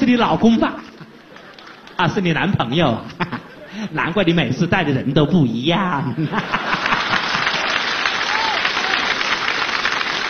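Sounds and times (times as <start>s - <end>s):
speech: 0.1s - 0.9s, 2.0s - 6.8s
laughter: 0.8s - 4.4s, 6.0s - 10.2s
audience applause at a live stage performance in Beijing: 0.9s - 2.0s, 6.4s - 10.2s.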